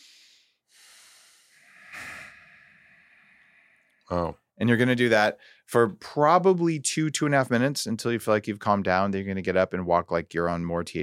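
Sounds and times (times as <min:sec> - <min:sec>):
slow deep breathing through the nose as a breathing exercise: 0:00.0 - 0:04.1
speech: 0:04.1 - 0:11.0.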